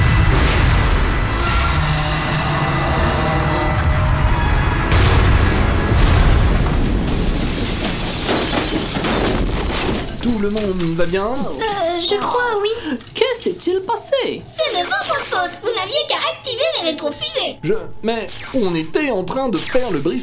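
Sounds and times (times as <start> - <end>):
spacecraft crash landing: 0.0 - 10.3
shattering booming impacts of a spacecraft crash landing: 0.0 - 11.6
speech: 10.6 - 20.2.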